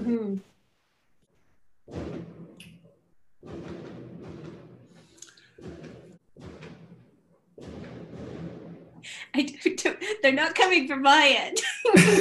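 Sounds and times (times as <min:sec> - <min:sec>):
fireworks exploding: 0:01.8 - 0:09.7
speech: 0:09.4 - 0:12.2.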